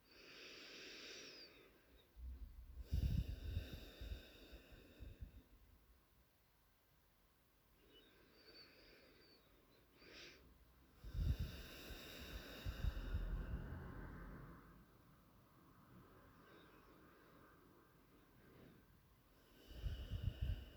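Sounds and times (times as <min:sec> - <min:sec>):
slow breathing in and out through the nose: 0:00.0 - 0:02.1, 0:02.8 - 0:05.5, 0:07.8 - 0:14.5, 0:16.1 - 0:20.7.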